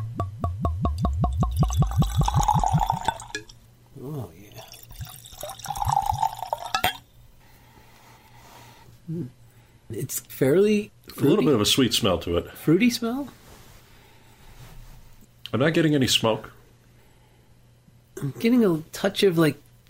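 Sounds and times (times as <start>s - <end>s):
spirit glugging from a bottle into a glass: 0.9s - 3.6s, 4.6s - 7.0s
glass clinks: 5.9s - 7.0s
speech: 10.4s - 13.4s, 15.5s - 16.6s, 18.2s - 19.6s.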